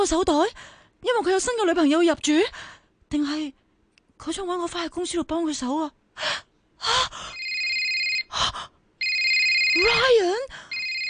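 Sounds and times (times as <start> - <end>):
speech: 0.0 - 3.6, 4.2 - 7.3, 9.8 - 10.7
new phone ringing with a steady high electronic ringtone: 7.3 - 8.3, 9.0 - 10.1, 10.7 - 11.0.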